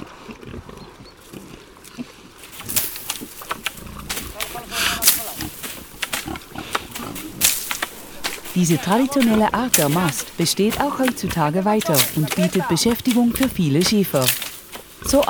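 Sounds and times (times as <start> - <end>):
rustling from pigs feeding on fallen acorns: 2.4 - 15.2
Iberian pigs grunting and squealing in a pasture among holm oaks and cork oaks: 2.5 - 15.2
speech: 8.6 - 14.4, 15.1 - 15.2.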